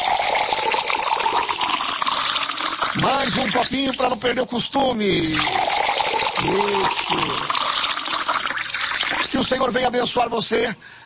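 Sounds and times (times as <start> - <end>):
water pouring into a glass: 0.0 - 4.1, 5.3 - 9.4
speech: 3.0 - 5.7, 6.4 - 7.6, 9.4 - 11.0.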